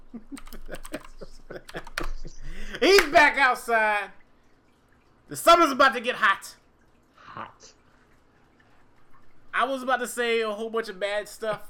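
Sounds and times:
faint low hum: 0.0 - 11.6
speech: 0.1 - 0.6, 2.8 - 4.2, 5.3 - 6.6, 9.6 - 11.6
keyboard typing while a chat message is written: 0.2 - 2.4.

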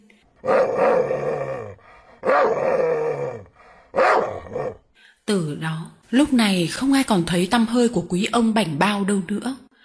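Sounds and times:
speech: 0.4 - 1.4, 6.1 - 9.6
dogs howling: 0.4 - 4.8
dogs barking: 2.2 - 4.8.

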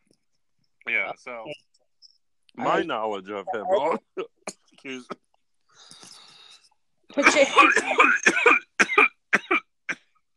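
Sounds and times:
speech: 0.9 - 1.7, 2.6 - 5.2, 7.2 - 8.6
person giving harsh coughs: 7.2 - 10.2.

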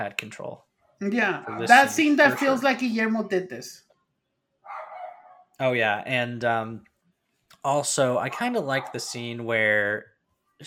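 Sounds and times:
speech: 0.0 - 3.9, 5.6 - 6.9, 7.6 - 10.1
neighbor's dog barking: 1.4 - 2.8, 4.6 - 5.5, 8.7 - 9.4.

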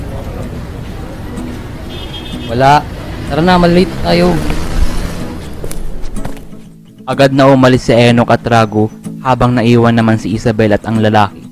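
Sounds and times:
street traffic with vehicle engines droning: 0.0 - 7.0
speech: 2.5 - 4.6, 7.1 - 11.4.

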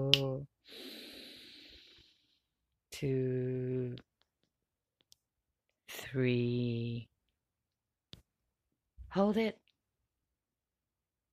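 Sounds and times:
long deep breath in through the nose during a guided breathing exercise: 0.6 - 2.5
speech: 3.0 - 3.4, 6.1 - 7.1, 9.2 - 9.6.

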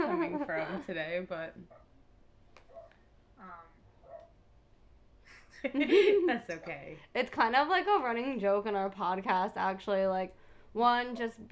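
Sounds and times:
laughter: 0.0 - 0.8
speech: 0.8 - 1.9, 3.4 - 3.8, 5.6 - 11.5
dog barking: 2.7 - 3.0, 4.0 - 4.4.

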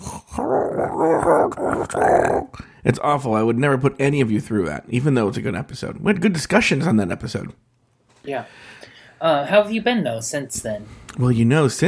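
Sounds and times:
voice imitating garbled distorted bad call audio: 0.0 - 2.6
speech: 0.4 - 11.8.

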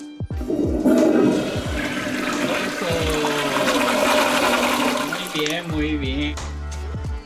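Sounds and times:
toilet flushing: 0.3 - 5.8.

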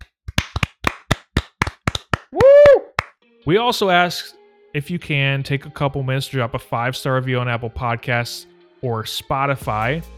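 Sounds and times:
hosts clapping hands: 0.0 - 3.1
speech: 3.4 - 10.1.

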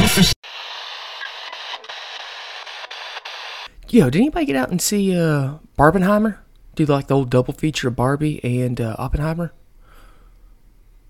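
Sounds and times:
harsh radio static crackle: 0.0 - 3.7
speech: 3.9 - 9.6.

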